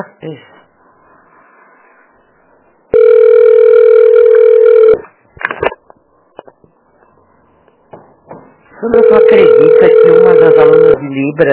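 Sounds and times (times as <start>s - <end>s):
speech: 0.0s - 0.5s, 8.8s - 11.5s
mobile phone ringing inside a handbag: 2.9s - 5.1s, 8.9s - 11.0s.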